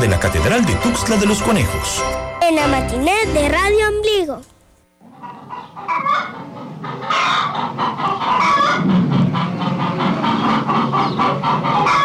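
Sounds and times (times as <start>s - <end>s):
speech: 0.0s - 4.5s
hen clucking: 5.0s - 12.0s.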